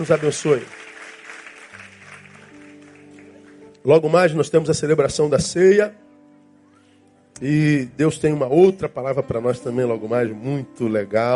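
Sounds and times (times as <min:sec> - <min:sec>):
speech: 0:00.0 - 0:00.9, 0:03.8 - 0:06.0, 0:07.4 - 0:11.3
audience applauding: 0:00.0 - 0:03.8
sustained keyboard or organ chords: 0:00.0 - 0:11.3.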